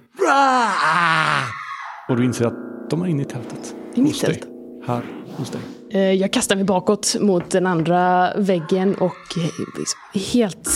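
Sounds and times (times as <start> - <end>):
person screaming: 0.2 - 2.1, 8.6 - 10.7
speech: 0.3 - 1.3, 2.1 - 10.7.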